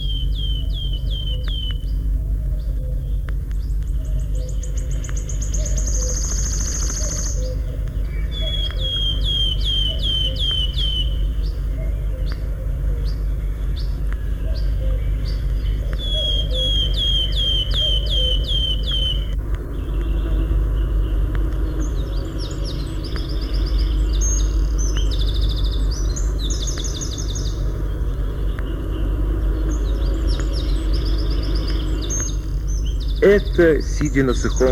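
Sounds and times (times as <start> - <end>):
steady low rumble of noise: 0.0 - 34.7
wood warbler singing outdoors: 0.0 - 34.7
speech: 33.3 - 34.7.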